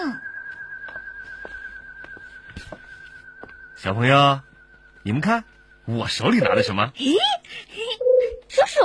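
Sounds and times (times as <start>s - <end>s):
steady whistling tone attributed to pigeons: 0.0s - 6.8s
speech: 3.8s - 7.7s.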